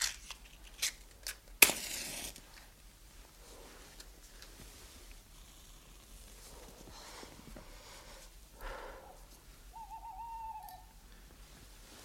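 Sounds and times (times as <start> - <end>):
soft hiss: 0.1 - 9.8, 10.6 - 12.0
owl hooting: 9.7 - 11.0.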